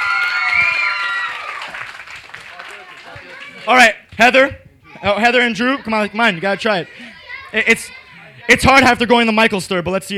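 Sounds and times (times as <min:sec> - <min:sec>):
cheers and whoops: 0:00.0 - 0:01.9
crowd applauding for a young boy taking a bow: 0:00.0 - 0:03.8
speech: 0:03.7 - 0:10.1.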